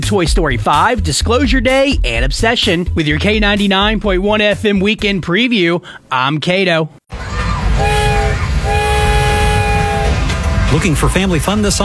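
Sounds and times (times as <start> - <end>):
speech: 0.1 - 8.0, 10.7 - 11.8
train rumbling: 7.1 - 11.8
train horn blasts: 7.8 - 10.6.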